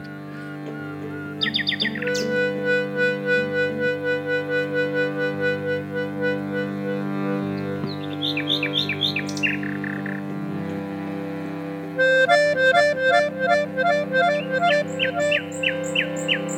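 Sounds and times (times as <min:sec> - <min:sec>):
steady low drone: 0:00.0 - 0:16.5
nightingale singing: 0:00.4 - 0:02.6, 0:07.9 - 0:10.2, 0:14.4 - 0:16.5
speech: 0:01.4 - 0:02.4.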